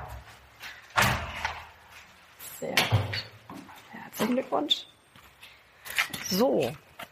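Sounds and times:
door slamming: 0:00.9 - 0:01.6
speech: 0:04.2 - 0:04.9, 0:06.3 - 0:06.9.

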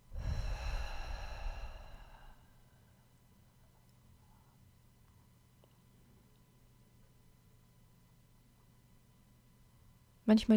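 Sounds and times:
deep breath exhaled through the mouth: 0:00.0 - 0:02.5
speech: 0:10.3 - 0:10.5.

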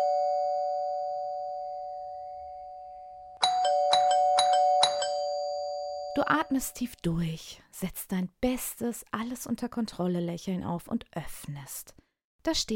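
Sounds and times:
doorbell ringing: 0:00.0 - 0:06.4
speech: 0:06.2 - 0:12.7.

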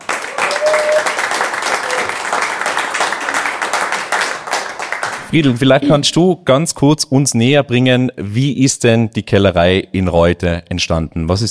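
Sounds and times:
crowd applauding: 0:00.0 - 0:06.1
whistle or cheer from the crowd: 0:00.3 - 0:01.2
speech: 0:05.3 - 0:11.5.

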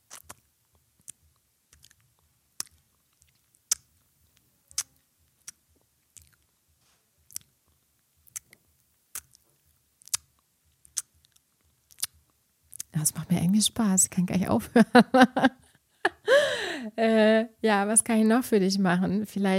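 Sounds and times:
wet lip smacking: 0:00.0 - 0:00.4, 0:01.0 - 0:04.0, 0:04.7 - 0:06.5, 0:07.3 - 0:07.6, 0:08.2 - 0:09.4, 0:10.0 - 0:12.9
chewing mouth sounds: 0:00.0 - 0:06.5, 0:07.2 - 0:12.9
speech: 0:13.0 - 0:15.6, 0:16.8 - 0:19.5.

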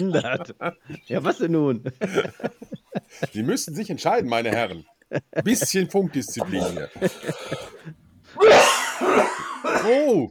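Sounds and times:
laughter: 0:00.0 - 0:09.4
speech: 0:00.0 - 0:10.3
coughing into a microphone: 0:06.4 - 0:10.2.

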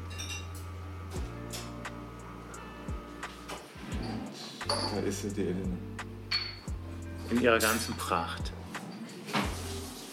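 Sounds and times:
coffee machine humming: 0:00.0 - 0:04.2
light glassy clinks and clicks: 0:04.7 - 0:05.1, 0:06.3 - 0:06.7
speech: 0:04.7 - 0:06.1, 0:07.3 - 0:08.6.

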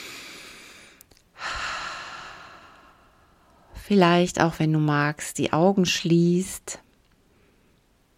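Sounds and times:
deep breathing in and out during a guided relaxation exercise: 0:00.0 - 0:03.8
speech: 0:03.9 - 0:06.8.

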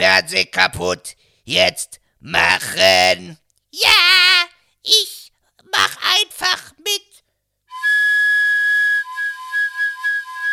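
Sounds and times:
speech: 0:00.0 - 0:07.1
steady high-pitched whistle with bright harmonic overtones: 0:07.7 - 0:10.5.

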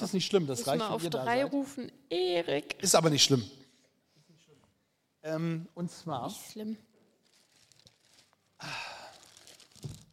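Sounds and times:
speech: 0:00.1 - 0:03.6, 0:05.2 - 0:06.9, 0:08.6 - 0:08.8
large sheet of paper crinkling and rustling: 0:07.1 - 0:10.1.

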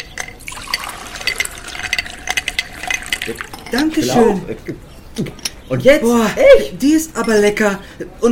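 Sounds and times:
glass clinks: 0:00.0 - 0:04.3
homemade lemonade pouring from a jug into a glass: 0:00.1 - 0:04.0
speech: 0:03.2 - 0:08.3.

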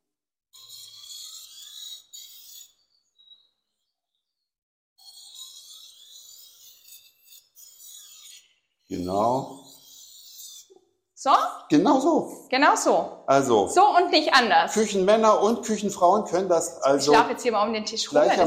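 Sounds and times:
knife blade being sharpened and deburred on sharpening stone: 0:00.6 - 0:04.2, 0:05.0 - 0:10.8
speech: 0:08.9 - 0:09.6, 0:11.2 - 0:18.4.

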